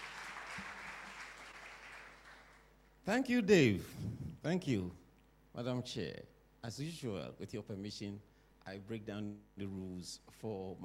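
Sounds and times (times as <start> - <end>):
audience applauding a speaker at a student competition: 0.0 - 2.9
speech: 3.1 - 5.0, 5.6 - 10.8.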